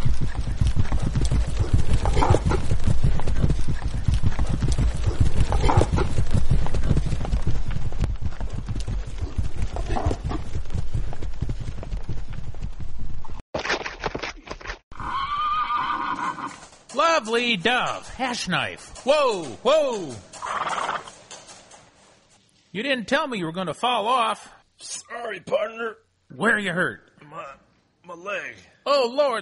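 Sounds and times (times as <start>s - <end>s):
galloping horse hooves pounding during a ride: 0.0s - 13.4s, 14.0s - 22.3s
horse whinnying loudly during a ride: 14.9s - 16.6s, 20.4s - 21.2s
speech: 17.2s - 20.3s, 22.8s - 29.3s.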